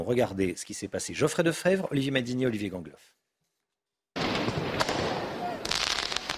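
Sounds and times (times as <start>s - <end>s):
speech: 0.0s - 3.2s
firework mortar shots during urban riots on a city square in Lyon: 4.2s - 6.3s.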